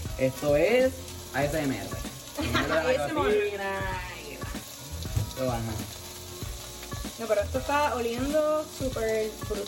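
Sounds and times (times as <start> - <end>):
carrot frying and sizzling in a pan: 0.0 - 9.6
speech: 0.2 - 4.1, 5.4 - 6.0, 7.2 - 9.6
person laughing: 2.4 - 3.3.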